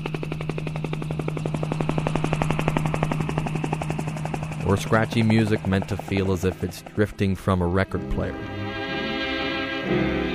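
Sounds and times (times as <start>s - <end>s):
helicopter rotor chopping over engine drone: 0.0s - 8.9s
speech: 4.7s - 8.6s, 9.9s - 10.2s.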